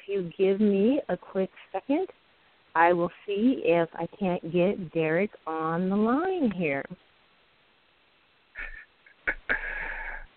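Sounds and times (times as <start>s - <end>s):
speech: 0.1s - 2.2s, 2.8s - 7.1s
man breathing over a phone line: 9.5s - 10.3s.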